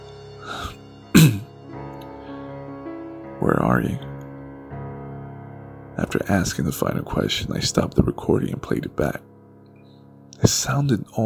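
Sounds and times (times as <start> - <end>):
soft breathy sound: 0.4 - 2.6
person clearing throat: 1.2 - 1.5
speech: 3.4 - 4.1, 6.1 - 9.3, 10.4 - 11.2.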